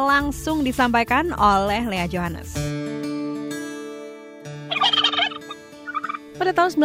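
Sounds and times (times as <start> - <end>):
speech: 0.0 - 2.8, 6.4 - 6.8
turkey gobbling: 4.7 - 6.3.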